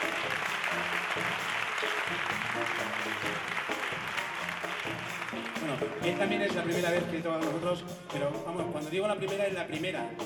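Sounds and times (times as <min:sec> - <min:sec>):
theatre audience applauding at a concert: 0:00.0 - 0:06.2
speech: 0:05.7 - 0:10.2.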